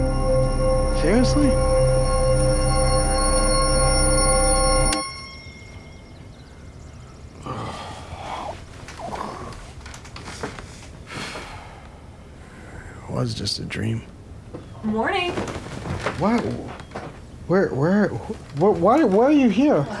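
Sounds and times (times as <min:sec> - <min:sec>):
bell ringing with rich metallic overtones: 0:00.0 - 0:07.0
speech: 0:01.0 - 0:01.8, 0:13.3 - 0:14.1, 0:14.8 - 0:16.8, 0:17.5 - 0:19.9
soft breathing: 0:07.4 - 0:13.1
quiet rustling: 0:08.5 - 0:11.5, 0:13.8 - 0:19.9.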